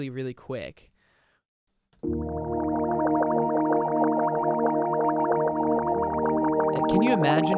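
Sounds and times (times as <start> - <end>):
speech: 0.0 - 0.9, 2.0 - 2.5, 6.9 - 7.5
buzzy synth tone with fast filter sweep between 900Hz and 2kHz: 2.0 - 7.5.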